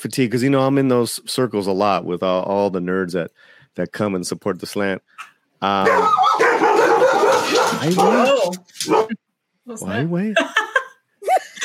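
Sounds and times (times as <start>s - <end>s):
speech: 0.0s - 10.6s
dogs barking and yelping: 5.2s - 9.2s
dog whining: 5.9s - 9.2s.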